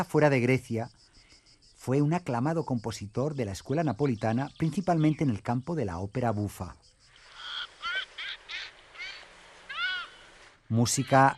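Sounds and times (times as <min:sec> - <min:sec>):
speech: 0:00.0 - 0:01.0, 0:01.8 - 0:06.9, 0:10.7 - 0:11.3
Audouin's gull harsh nasal squawks: 0:07.2 - 0:11.3.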